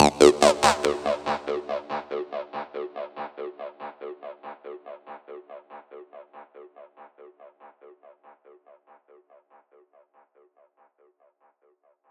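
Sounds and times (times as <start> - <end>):
synth music in D at 142 BPM: 0.0 - 4.9.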